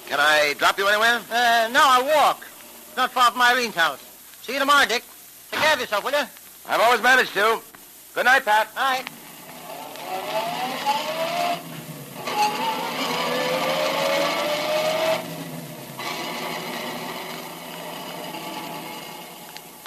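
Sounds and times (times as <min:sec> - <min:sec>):
speech: 0:00.1 - 0:09.2
car engine revving as the vehicle pulls away through gear changes: 0:09.2 - 0:19.8.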